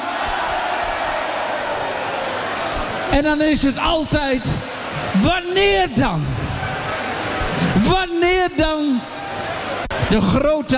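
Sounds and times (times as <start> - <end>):
large audience clapping and cheering: 0.0 - 7.8
speech: 3.1 - 6.4, 7.7 - 9.2, 10.1 - 10.7.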